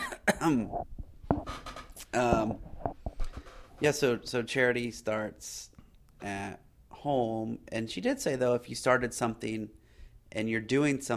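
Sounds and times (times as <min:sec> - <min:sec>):
person coughing: 0:00.0 - 0:00.7
speech: 0:00.4 - 0:01.0, 0:02.1 - 0:02.7, 0:03.8 - 0:11.1.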